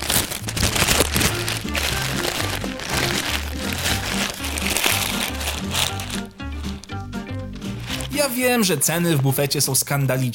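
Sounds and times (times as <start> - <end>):
candy bar wrapper crinkling: 0.0 - 10.0
speech: 8.2 - 10.3.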